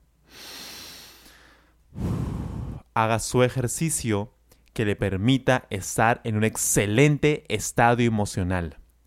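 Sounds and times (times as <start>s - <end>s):
slow deep breath close to the microphone: 0.2s - 2.9s
speech: 3.0s - 8.8s.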